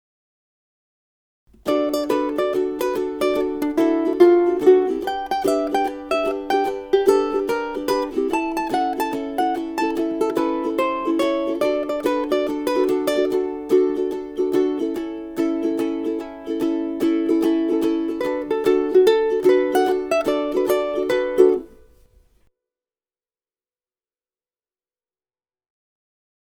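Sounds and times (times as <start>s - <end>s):
ukulele riff: 1.6s - 22.2s.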